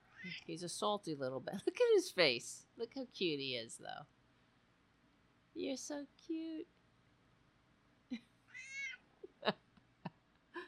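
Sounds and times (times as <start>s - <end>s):
speech: 0.2s - 4.2s, 5.6s - 6.8s, 9.4s - 9.6s
cat meowing: 8.5s - 9.0s.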